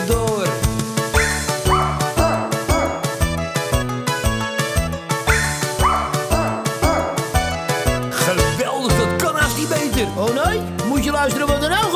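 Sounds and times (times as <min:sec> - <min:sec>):
bouncy children's song musical backing: 0:00.0 - 0:11.9
poodle and Pekingese among dogs barking in rhythm as a singing choir: 0:00.7 - 0:09.4.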